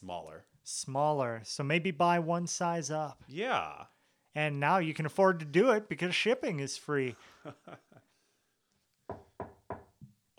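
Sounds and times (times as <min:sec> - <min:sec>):
speech: 0:00.0 - 0:08.1
laughter: 0:07.1 - 0:08.1
knocking on a door: 0:09.1 - 0:10.2.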